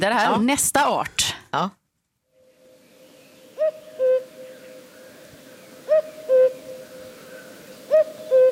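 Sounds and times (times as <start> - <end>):
speech: 0.0 - 1.8
faint hissy outdoor background: 0.0 - 8.4
common cuckoo calling two-note cu-coo: 2.4 - 8.4.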